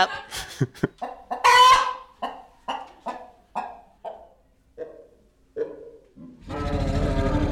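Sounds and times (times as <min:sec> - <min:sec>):
chicken-like clucks in imagined T-Rex call: 0:00.0 - 0:06.6
loud deep rumbling growl in imagined T-Rex call: 0:06.2 - 0:07.4.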